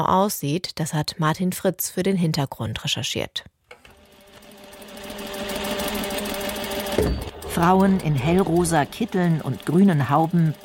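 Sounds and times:
speech: 0:00.0 - 0:03.6, 0:07.0 - 0:10.6
industrial sewing machines rattling in a prison workroom: 0:03.9 - 0:10.6.

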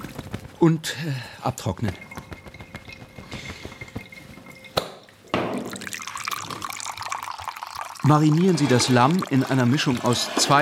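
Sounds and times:
speech: 0:00.6 - 0:02.1, 0:08.1 - 0:10.6
tap water dripping: 0:01.7 - 0:10.3.

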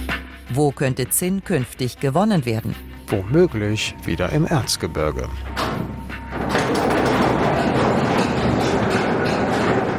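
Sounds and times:
speech: 0:00.5 - 0:05.6
old mine railway locomotive pulling wagons: 0:06.3 - 0:09.9.

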